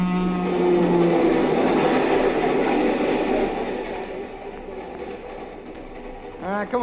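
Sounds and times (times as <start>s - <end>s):
brief horn-like tone of a passenger train: 0.0s - 2.4s
passenger train bound for New York passing: 0.0s - 6.8s.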